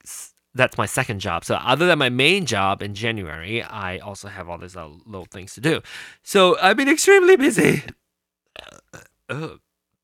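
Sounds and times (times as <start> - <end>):
speech: 0.5 - 8.0, 8.6 - 9.6
loud burp: 8.5 - 9.7.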